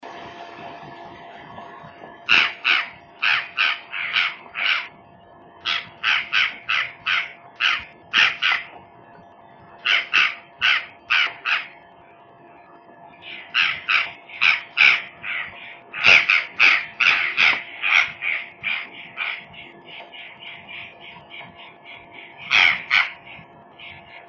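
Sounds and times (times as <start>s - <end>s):
Purplish Jay Cyanocorax cyanomelas calls: 2.3s - 5.0s, 5.6s - 8.8s, 9.8s - 11.8s, 13.2s - 24.2s.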